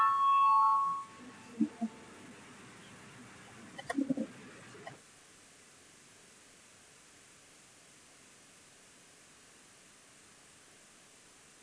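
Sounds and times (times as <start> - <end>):
parliament voting bell ringing before a vote: 0.0 - 1.2
soft low murmurs: 1.1 - 5.0.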